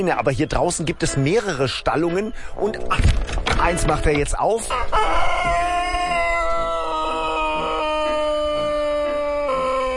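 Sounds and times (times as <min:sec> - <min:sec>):
speech: 0:00.0 - 0:05.7
Serbian Sanchak long-crowing rooster crowing in an open-air chicken area: 0:04.6 - 0:09.9.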